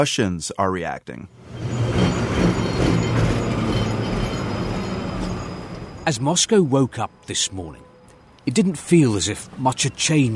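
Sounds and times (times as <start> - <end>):
speech: 0.0 - 1.6, 6.1 - 10.3
tram rumbling along a city street in Moscow: 1.2 - 10.3.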